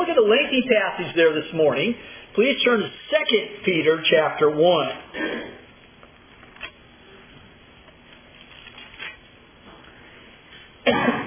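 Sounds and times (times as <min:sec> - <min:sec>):
low noise: 0:00.0 - 0:11.2
speech: 0:00.2 - 0:05.6
person with an irritated throat coughing: 0:05.1 - 0:05.7, 0:10.8 - 0:11.2.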